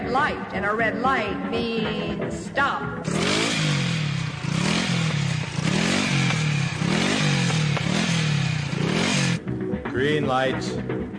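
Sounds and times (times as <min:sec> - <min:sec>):
speech: 0:00.1 - 0:03.7, 0:10.0 - 0:11.0
motorcycle engine revving over a rumbling idle: 0:02.9 - 0:09.6.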